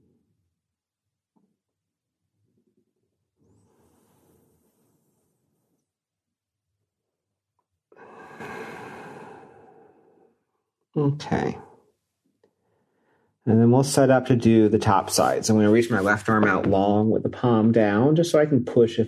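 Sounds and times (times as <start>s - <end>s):
slow exhaling during a guided breathing exercise: 3.6s - 5.6s, 7.9s - 10.5s, 12.6s - 13.4s
speech: 11.0s - 11.7s, 13.5s - 19.0s.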